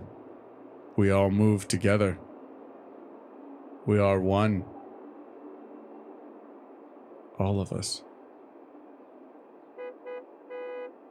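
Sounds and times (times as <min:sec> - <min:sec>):
road traffic rumble: 0:00.0 - 0:11.1
speech: 0:01.0 - 0:02.3, 0:03.9 - 0:04.8, 0:07.4 - 0:08.1
car horn honking: 0:09.8 - 0:11.0.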